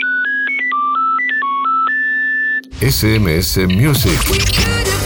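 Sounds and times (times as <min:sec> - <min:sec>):
classic mobile phone ringtone: 0:00.0 - 0:02.6
speech: 0:02.8 - 0:04.9.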